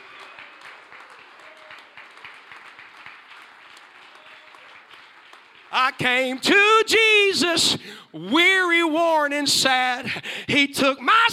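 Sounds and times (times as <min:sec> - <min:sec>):
crowd clapping hands: 0:00.0 - 0:06.5
speech: 0:05.7 - 0:11.3.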